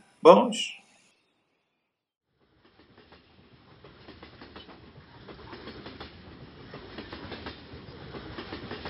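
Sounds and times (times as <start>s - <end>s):
speech: 0.2s - 0.8s
train wheels clicking on rails: 2.4s - 8.8s.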